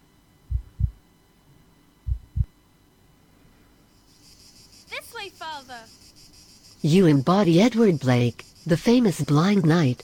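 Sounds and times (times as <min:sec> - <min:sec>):
faint steady hum: 0:00.0 - 0:10.0
slow heartbeat lub-dub thumps: 0:00.4 - 0:01.0, 0:02.0 - 0:02.6
speech: 0:05.2 - 0:06.0, 0:06.8 - 0:10.0.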